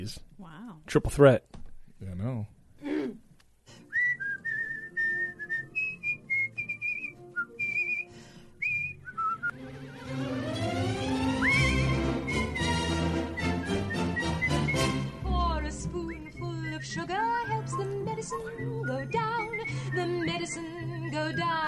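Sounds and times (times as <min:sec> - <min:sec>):
speech: 0:00.0 - 0:02.6
person whistling birdlike tune mimicking a robin: 0:03.9 - 0:09.6, 0:11.4 - 0:12.7, 0:13.3 - 0:21.6
soft orchestral accompaniment: 0:09.5 - 0:18.3.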